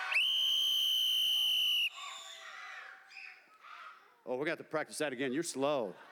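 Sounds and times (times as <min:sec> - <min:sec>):
loud steady whistle blast to quiet a crowd: 0:00.2 - 0:02.3
speech: 0:04.3 - 0:06.1.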